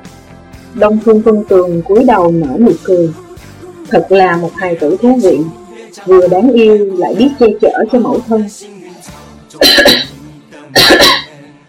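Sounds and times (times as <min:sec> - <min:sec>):
speech: 0:00.7 - 0:03.2, 0:03.9 - 0:11.1
man coughing heavily: 0:09.6 - 0:10.1, 0:10.8 - 0:11.4.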